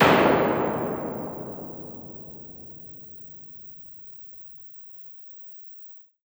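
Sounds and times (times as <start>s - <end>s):
EMT 140 dark plate reverb impulse response: 0.0s - 3.1s.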